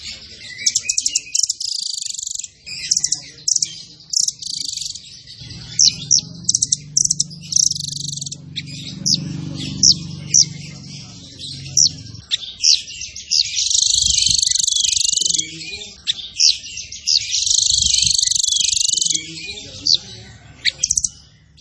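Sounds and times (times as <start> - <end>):
zebra finch twittering: 0.0 - 21.5
low hum: 4.9 - 12.3.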